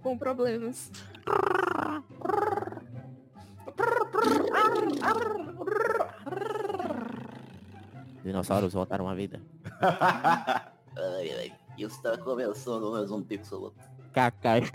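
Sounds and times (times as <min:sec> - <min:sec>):
speech: 0:00.1 - 0:02.4, 0:04.7 - 0:06.0, 0:08.3 - 0:14.7
voice imitating a chicken inside the throat: 0:01.2 - 0:02.9, 0:03.7 - 0:08.2
laughter: 0:03.8 - 0:07.4, 0:09.7 - 0:10.8.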